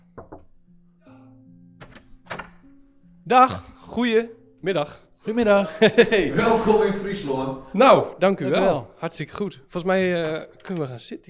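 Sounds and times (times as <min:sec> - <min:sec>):
knocking on a door: 0:00.0 - 0:00.6
speech: 0:03.3 - 0:11.2
laughter: 0:05.4 - 0:07.7.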